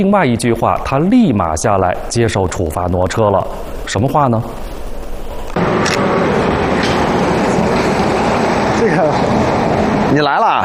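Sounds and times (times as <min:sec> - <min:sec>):
speech: 0:00.0 - 0:04.8
subway train wheels and carriage rumbling: 0:04.8 - 0:10.6.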